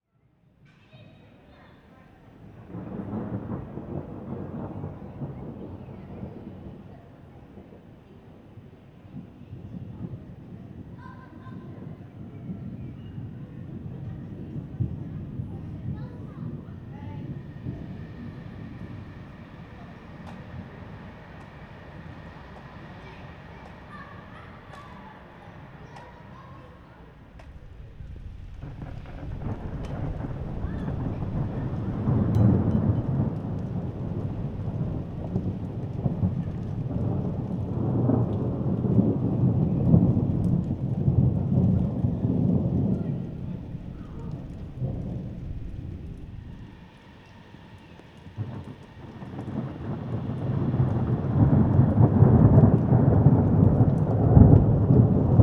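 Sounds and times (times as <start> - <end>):
thunder: 0.6 - 55.4.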